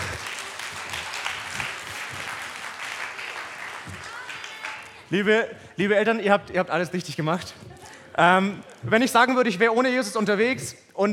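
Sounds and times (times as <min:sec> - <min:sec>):
audience applause: 0:00.0 - 0:05.1
speech: 0:05.1 - 0:11.1.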